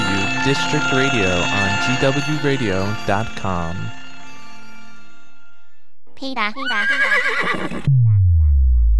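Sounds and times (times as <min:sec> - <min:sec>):
speech: 0:00.4 - 0:04.0, 0:06.2 - 0:08.1
horse whinnying: 0:06.6 - 0:07.9.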